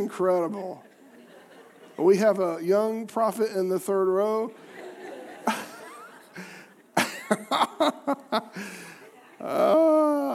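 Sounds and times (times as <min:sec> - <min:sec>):
speech: 0:00.0 - 0:00.9, 0:02.0 - 0:04.7, 0:07.3 - 0:08.8, 0:09.4 - 0:10.3
laughter: 0:00.7 - 0:02.6, 0:04.3 - 0:10.3
young audience member grunting: 0:09.4 - 0:10.3.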